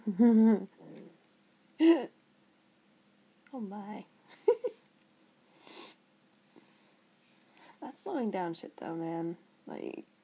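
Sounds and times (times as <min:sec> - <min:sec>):
speech: 0:00.1 - 0:00.8, 0:01.8 - 0:02.2, 0:03.5 - 0:04.1, 0:07.8 - 0:10.1
animal giving a low rough growl: 0:00.8 - 0:01.2.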